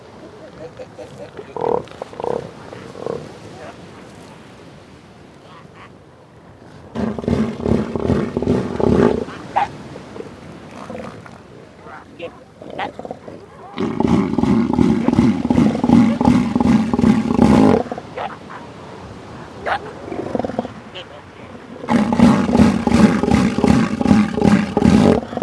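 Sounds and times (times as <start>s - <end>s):
southern elephant seal giving short pulsed bellows: 6.9s - 18.8s, 19.4s - 25.4s.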